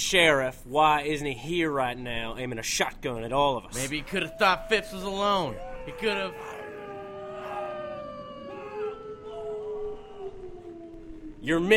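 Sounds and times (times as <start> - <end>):
speech: 0.0 - 6.5, 11.4 - 11.7
wolves howling: 3.7 - 11.7.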